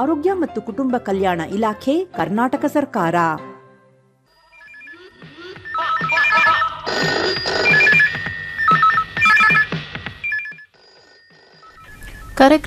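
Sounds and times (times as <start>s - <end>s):
speech: 0.0s - 3.5s, 12.4s - 12.6s
electronic telephone ringtone for a live phone-in call: 4.3s - 12.5s.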